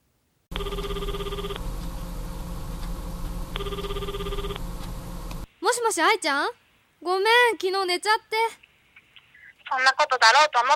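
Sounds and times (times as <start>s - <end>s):
steady hum: 0.0s - 10.7s
mobile phone ringing: 0.5s - 1.7s, 3.5s - 4.6s
speech: 5.9s - 8.6s, 9.7s - 10.7s.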